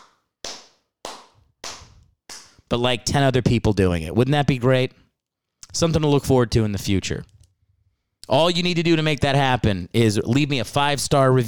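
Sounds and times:
single person clapping hands: 0:00.0 - 0:02.7
speech: 0:02.7 - 0:05.0, 0:05.7 - 0:07.3, 0:08.3 - 0:11.4.

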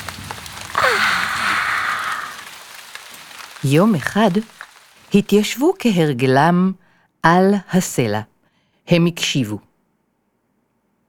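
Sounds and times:
rain falling: 0:00.0 - 0:06.5
speech: 0:03.6 - 0:08.3, 0:08.9 - 0:09.7.

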